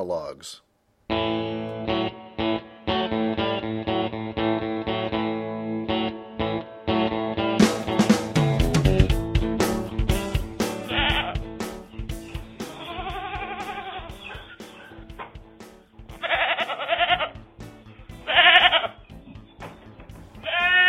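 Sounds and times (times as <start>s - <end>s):
speech: 0.0s - 1.6s
steady music: 1.1s - 20.8s
ticking beat: 7.6s - 20.4s
several goats bleating: 10.8s - 11.5s, 12.6s - 14.6s, 16.1s - 17.4s, 18.1s - 19.0s, 20.3s - 20.8s.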